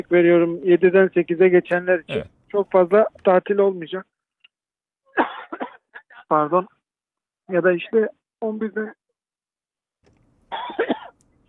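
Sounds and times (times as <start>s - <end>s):
speech: 0.0s - 4.1s, 6.3s - 6.8s, 7.5s - 9.0s, 10.5s - 11.0s
person coughing from a tickle in the throat: 5.2s - 6.0s, 10.5s - 11.1s.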